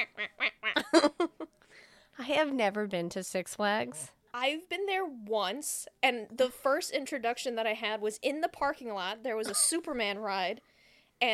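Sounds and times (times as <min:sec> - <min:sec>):
duck quacking: 0:00.0 - 0:00.9
speech: 0:00.9 - 0:01.2, 0:02.3 - 0:11.3.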